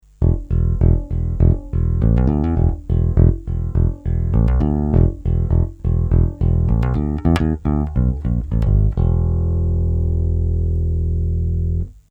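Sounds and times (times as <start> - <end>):
Ampeg SVT bass amplifier channel one bright: 0.0 - 12.1.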